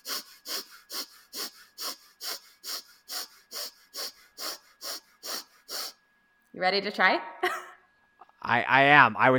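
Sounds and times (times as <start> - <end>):
forced inhales and exhales through the nose in a breathing exercise: 0.0 - 6.0
speech: 6.6 - 7.7, 8.4 - 9.3.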